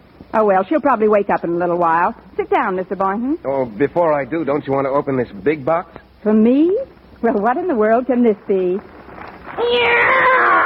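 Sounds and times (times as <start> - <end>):
speech: 0.4 - 9.0, 9.6 - 10.3
cat meowing: 9.6 - 10.6.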